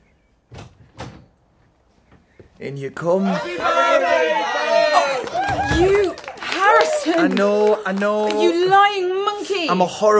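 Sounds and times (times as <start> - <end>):
bar door being opened with faint thuds: 0.5 - 1.3
speech: 2.6 - 6.2, 6.8 - 10.1.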